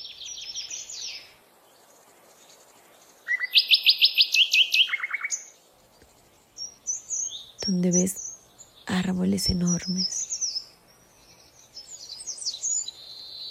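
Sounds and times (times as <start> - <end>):
forest birdsong: 0.0 - 13.5
speech: 7.7 - 8.2, 9.0 - 10.2.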